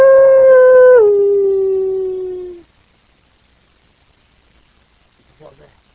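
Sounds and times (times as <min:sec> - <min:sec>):
human voice imitating a coyote howl: 0:00.0 - 0:02.6.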